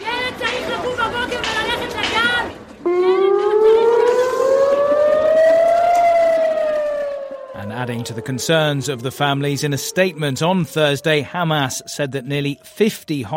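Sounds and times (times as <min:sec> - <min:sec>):
crowd chattering loudly at a rally: 0:00.0 - 0:04.4
air raid siren wailing: 0:02.8 - 0:12.9
speech: 0:08.1 - 0:13.3.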